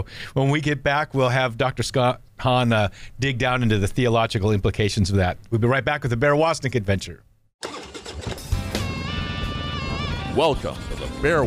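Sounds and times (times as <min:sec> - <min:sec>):
speech: 0:00.0 - 0:07.7, 0:10.4 - 0:11.4
motorcycle engine kickstarted and revving: 0:07.6 - 0:11.4.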